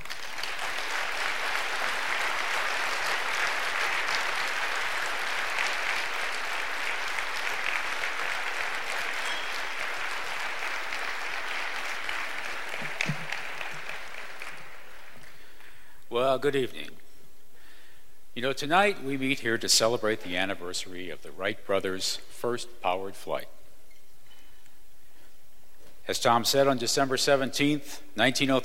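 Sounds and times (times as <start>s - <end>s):
audience applause welcoming a speaker at an aviation gathering: 0.0s - 15.4s
speech: 16.3s - 17.0s, 18.4s - 23.6s, 26.1s - 28.6s.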